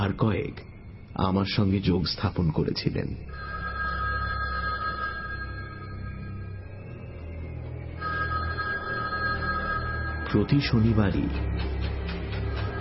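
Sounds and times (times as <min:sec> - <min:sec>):
speech: 0:00.0 - 0:03.4, 0:10.3 - 0:11.9
telephone bell ringing: 0:03.3 - 0:07.0, 0:08.0 - 0:10.7.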